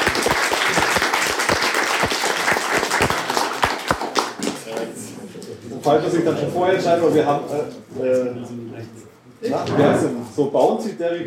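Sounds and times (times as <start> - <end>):
small audience applauding a contestant: 0.0 - 4.9
speech: 5.8 - 11.2.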